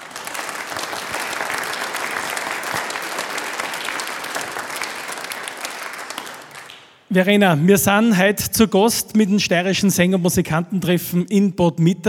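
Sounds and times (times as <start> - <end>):
large audience applause: 0.0 - 7.0
speech: 7.1 - 12.0.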